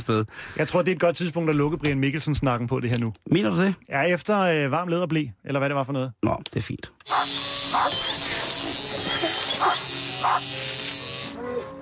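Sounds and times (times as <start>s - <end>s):
speech: 0.0s - 8.0s
electric clipper buzzing: 7.0s - 11.4s
dog barking: 7.1s - 8.0s, 9.6s - 10.4s.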